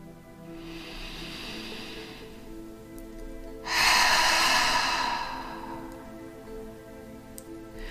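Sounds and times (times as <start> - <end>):
deep breath in through the nose and out through the mouth: 0.5 - 2.6, 3.6 - 6.2.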